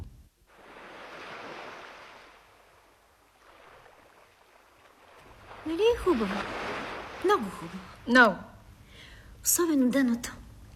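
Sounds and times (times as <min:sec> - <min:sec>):
sea waves washing onto the shore: 0:00.5 - 0:08.4
speech: 0:05.7 - 0:06.6, 0:07.2 - 0:08.5, 0:09.4 - 0:10.4.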